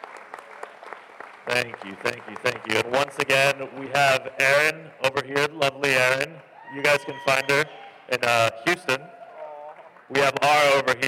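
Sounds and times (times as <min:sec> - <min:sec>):
audience applause of many hands clapping: 0:00.0 - 0:05.3, 0:06.4 - 0:11.0
speech: 0:01.5 - 0:09.2, 0:10.1 - 0:11.0.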